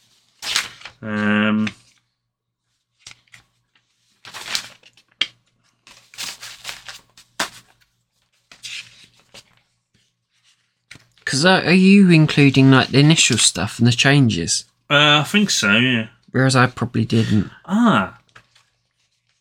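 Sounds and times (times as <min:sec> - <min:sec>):
papers being shuffled: 0:00.0 - 0:02.1, 0:02.7 - 0:11.3, 0:12.1 - 0:13.7, 0:18.2 - 0:19.3
speech: 0:01.0 - 0:01.8, 0:11.3 - 0:18.2.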